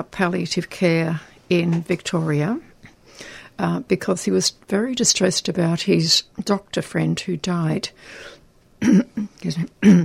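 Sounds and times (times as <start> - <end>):
speech: 0.0 - 10.0
person clearing throat: 8.8 - 10.0
person coughing in short rough bursts: 8.8 - 10.0.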